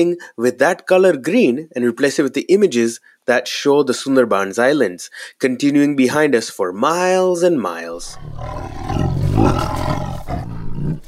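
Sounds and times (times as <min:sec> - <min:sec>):
speech: 0:00.0 - 0:11.0
tiger roaring with a deep sustained rumble: 0:08.0 - 0:11.0.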